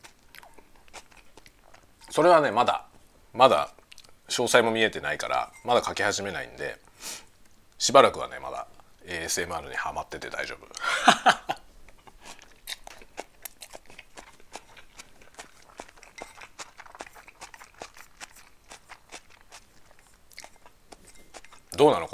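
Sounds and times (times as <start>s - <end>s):
person chewing crunchy bean sprouts: 0.0s - 2.2s, 10.8s - 22.1s
speech: 2.2s - 7.2s, 7.8s - 11.4s, 21.8s - 22.1s
laughter: 10.8s - 11.6s.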